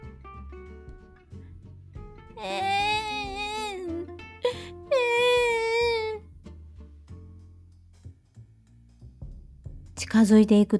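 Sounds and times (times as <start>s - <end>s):
speech: 2.4s - 2.8s, 10.1s - 10.7s
infant wailing: 2.4s - 6.2s.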